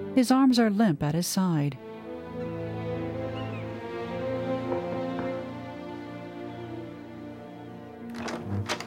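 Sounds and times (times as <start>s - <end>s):
speech: 0.1s - 1.9s
sustained tonal music: 1.9s - 8.8s
door opening with latch clicks and thunk: 4.6s - 5.5s, 8.0s - 8.8s.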